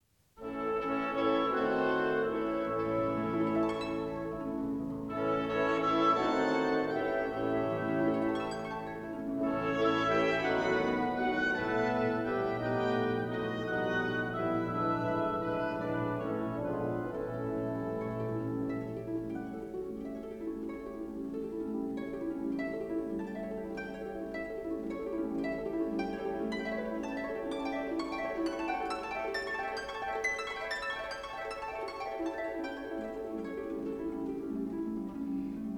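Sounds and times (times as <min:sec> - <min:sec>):
harp with orchestra: 0:00.4 - 0:35.7.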